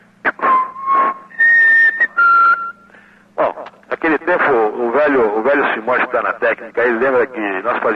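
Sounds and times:
person whistling a radio news opening theme: 0.4s - 2.8s
breaths between whistled phrases: 2.8s - 3.4s
speech: 4.3s - 7.9s.

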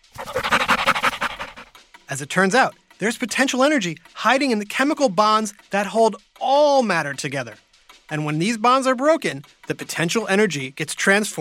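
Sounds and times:
excited dog panting: 0.0s - 1.8s
speech: 2.1s - 11.3s.

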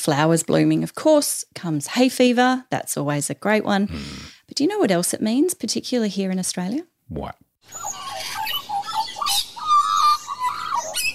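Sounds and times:
speech: 0.0s - 8.0s
Australian magpie singing: 7.6s - 11.1s.

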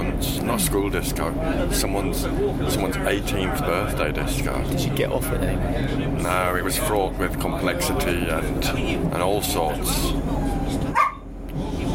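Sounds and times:
low murmur: 0.0s - 11.9s
speech: 0.2s - 10.8s
dog barking: 10.9s - 11.3s.

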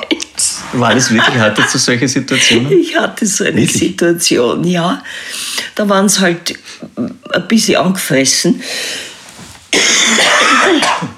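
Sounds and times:
speech: 0.7s - 9.1s, 9.7s - 11.1s
laughter: 0.8s - 2.7s
two people coughing: 9.7s - 11.1s.

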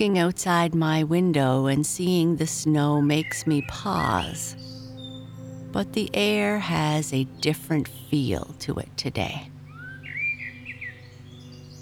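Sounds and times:
speech: 0.0s - 4.7s, 5.7s - 9.5s
birds singing outdoors on a spring day: 2.9s - 11.7s.

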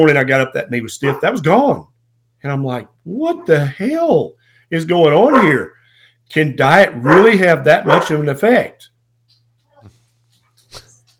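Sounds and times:
speech: 0.0s - 8.9s
steady low electrical hum: 0.0s - 11.1s
dog barking at a UPS delivery driver: 1.0s - 1.3s, 5.2s - 5.8s, 6.9s - 8.2s.

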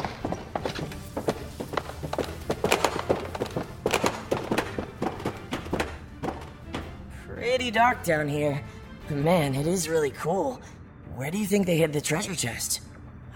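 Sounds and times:
footsteps going down a set of stairs aboard a ship: 0.0s - 7.1s
speech: 7.5s - 12.9s.

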